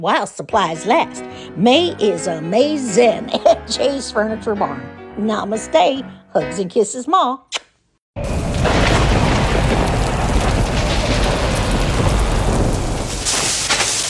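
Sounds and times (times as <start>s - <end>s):
speech: 0.0s - 7.6s
deep rumble of thunder: 8.2s - 14.0s
heavy rain: 8.2s - 14.0s.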